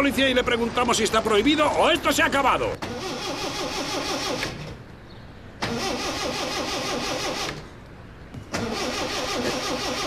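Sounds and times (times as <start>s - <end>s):
speech: 0.0s - 4.5s
car engine cranking, failing to start: 2.8s - 4.8s, 5.6s - 7.7s, 8.5s - 10.0s.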